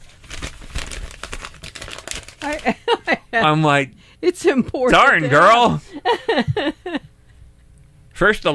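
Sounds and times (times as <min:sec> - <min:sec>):
paper being crinkled and handled: 0:00.0 - 0:08.1
speech: 0:02.4 - 0:07.1, 0:08.2 - 0:08.5
laughter: 0:02.4 - 0:07.2.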